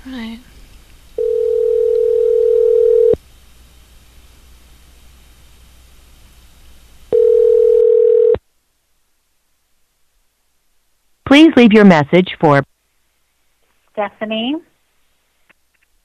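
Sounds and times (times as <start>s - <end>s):
speech: 0.0s - 0.5s, 11.6s - 12.7s, 14.0s - 14.7s
faint hiss: 0.0s - 16.0s
ringback tone of an outgoing telephone call: 1.2s - 3.2s, 7.1s - 8.4s.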